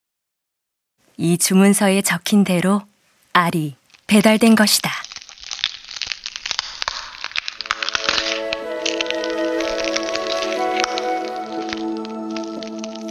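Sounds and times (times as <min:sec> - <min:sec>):
speech: 0:01.2 - 0:05.1
eggshell cracking open with brittle snaps and crackles: 0:03.2 - 0:13.1.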